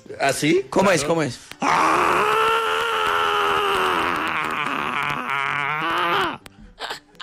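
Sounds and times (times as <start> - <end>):
speech: 0.2 - 2.3
person imitating an angry drawn-out scream: 1.6 - 6.4.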